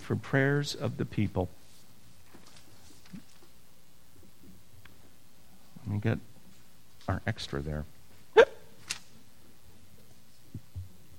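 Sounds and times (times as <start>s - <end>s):
speech: 0.1s - 1.6s, 5.9s - 6.3s, 7.1s - 8.0s
person hiccuping: 8.3s - 8.7s.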